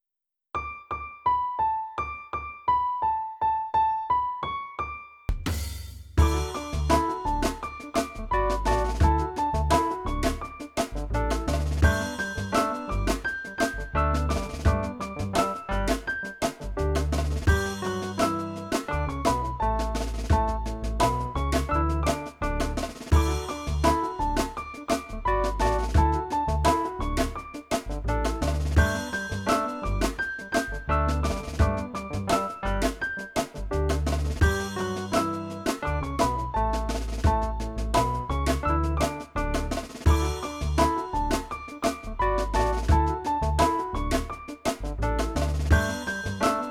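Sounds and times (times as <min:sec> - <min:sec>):
instrumental music: 0:01.3 - 0:46.6.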